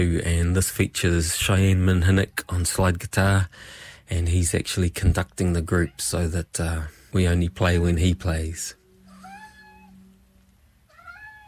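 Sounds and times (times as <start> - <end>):
speech: 0.0 - 8.8
low steady tone humming: 0.0 - 11.4
domestic cat meowing: 9.0 - 10.2, 10.9 - 11.4.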